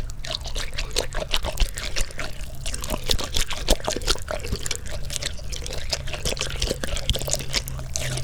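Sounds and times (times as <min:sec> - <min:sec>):
uncomfortable gooshy melon squishing: 0:00.0 - 0:08.2.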